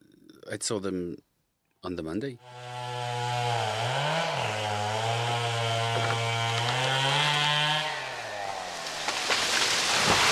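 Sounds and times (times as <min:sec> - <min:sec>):
speech: 0:00.5 - 0:02.6
chainsaw cutting trees: 0:02.4 - 0:10.3.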